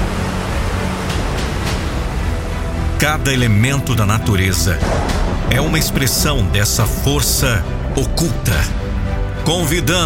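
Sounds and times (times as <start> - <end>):
ocean waves breaking on the beach: 0.0 - 6.5
speech: 3.0 - 8.8, 9.5 - 10.0.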